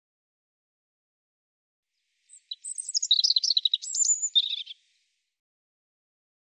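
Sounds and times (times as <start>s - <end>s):
European robin singing: 2.3s - 5.0s.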